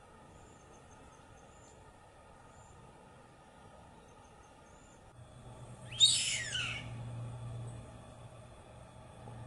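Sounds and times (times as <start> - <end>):
low steady hum: 0.0 - 9.4
white hawk hoarse harsh screech: 5.9 - 6.9.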